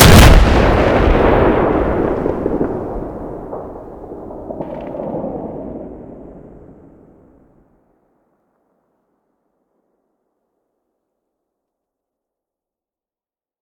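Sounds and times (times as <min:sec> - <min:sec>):
RPG-7 rocket explosion: 0:00.0 - 0:07.6.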